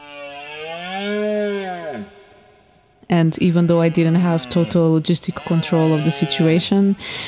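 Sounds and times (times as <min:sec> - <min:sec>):
Iberian red deer stag roaring during rut: 0:00.0 - 0:02.3
speech: 0:03.2 - 0:07.2.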